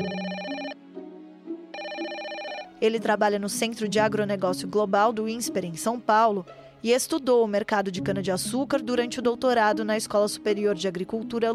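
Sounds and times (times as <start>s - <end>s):
ringback tone of an outgoing telephone call: 0.0s - 0.8s, 1.8s - 2.8s
speech: 2.8s - 11.5s.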